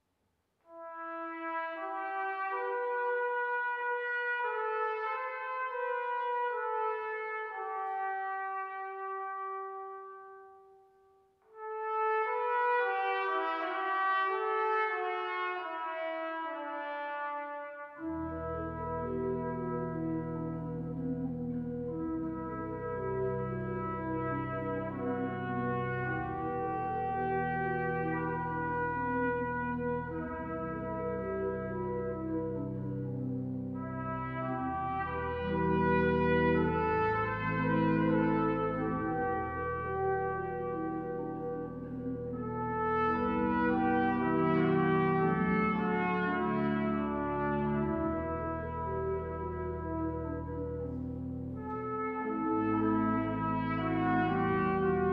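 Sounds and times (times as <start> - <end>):
trumpet playing a hymn: 0.7 - 10.7, 11.6 - 55.1
organ playing a hymn: 18.0 - 55.1.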